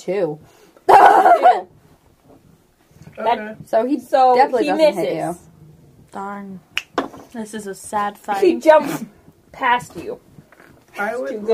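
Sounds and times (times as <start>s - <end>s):
speech: 0.0s - 1.8s, 3.2s - 5.5s, 6.1s - 6.7s, 7.3s - 10.3s, 11.0s - 11.5s
dog barking and whimpering: 0.9s - 1.7s.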